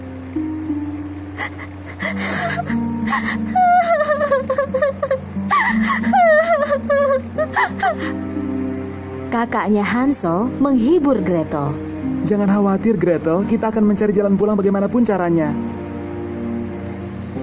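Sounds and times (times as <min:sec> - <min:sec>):
steady low hum: 0:00.0 - 0:17.4
girl crying and whimpering: 0:01.3 - 0:08.6
speech: 0:01.4 - 0:08.3, 0:09.3 - 0:15.8.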